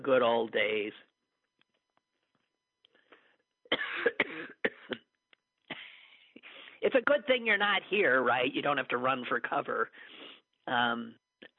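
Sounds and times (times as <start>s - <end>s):
speech: 0.0s - 1.1s, 6.8s - 11.5s
person coughing in rough wet hacks: 3.7s - 5.1s, 5.7s - 6.0s.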